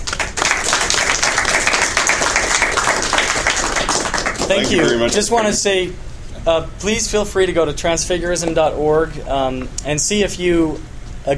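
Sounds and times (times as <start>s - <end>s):
crowd applauding: 0.0s - 5.6s
speech: 4.5s - 11.3s.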